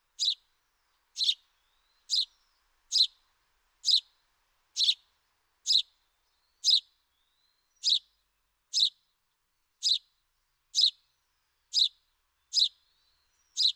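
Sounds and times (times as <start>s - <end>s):
House sparrow Passer domesticus giving harsh chirps: 0.2s - 0.4s, 1.2s - 1.4s, 2.0s - 3.1s, 3.8s - 4.1s, 4.8s - 5.0s, 6.6s - 6.8s, 7.7s - 8.1s, 8.7s - 9.0s, 9.8s - 10.0s, 10.8s - 11.0s, 11.7s - 12.8s, 13.4s - 13.7s.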